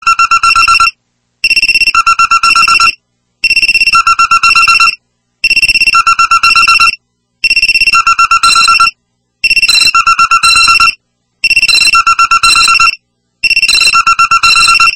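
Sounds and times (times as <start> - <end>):
mobile phone wake-up alarm ringtone: 0.0 - 14.9.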